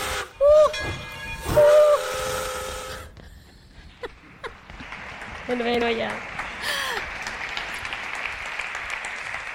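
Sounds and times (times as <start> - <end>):
steam locomotive whistle blasts: 0.0 - 3.2
steam train chuffing as it departs: 0.0 - 4.4
mechanical clanks: 0.6 - 2.6
hissing steam from a locomotive: 1.4 - 3.2
speech: 5.5 - 6.3.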